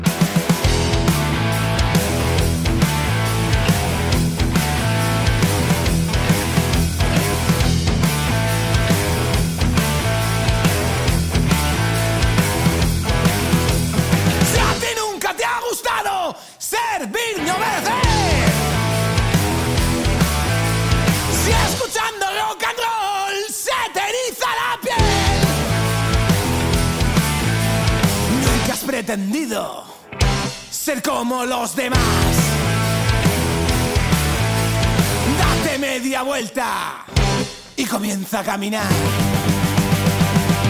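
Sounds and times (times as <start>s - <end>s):
band playing a loud song with a driving beat: 0.0s - 15.0s, 17.4s - 22.0s, 25.0s - 29.0s, 30.2s - 31.0s, 31.9s - 36.1s, 37.1s - 38.1s, 38.8s - 40.6s
person singing over the band: 14.3s - 20.2s, 21.2s - 27.1s, 28.2s - 30.0s, 30.8s - 33.2s, 35.2s - 37.2s, 37.8s - 39.4s
speech: 31.3s - 32.4s, 36.2s - 37.2s, 37.8s - 39.3s.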